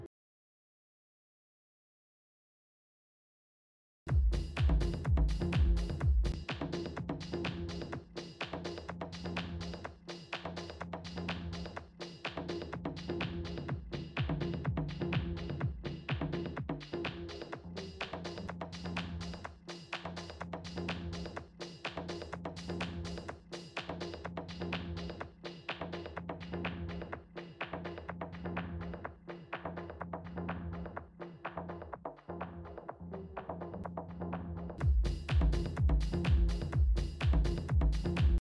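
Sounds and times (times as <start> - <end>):
tech house synths: 4.1 - 29.0, 34.8 - 38.4.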